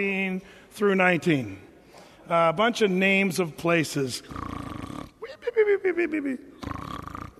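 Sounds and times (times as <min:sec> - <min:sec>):
speech: 0:00.0 - 0:01.7, 0:02.3 - 0:04.5, 0:05.3 - 0:06.5
man imitating an exaggerated cartoon snore: 0:04.2 - 0:05.2, 0:06.5 - 0:07.3
laughter: 0:05.2 - 0:06.6.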